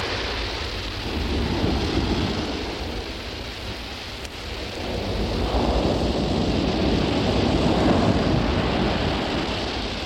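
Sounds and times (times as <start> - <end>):
fine cold rain hissing: 0.0 - 10.0
gusting wind: 0.0 - 10.0.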